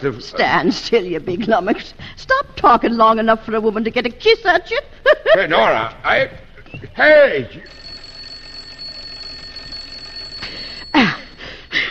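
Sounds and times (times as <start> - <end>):
speech: 0.0 - 7.8
doorbell ringing with bright metallic bursts: 7.6 - 11.8.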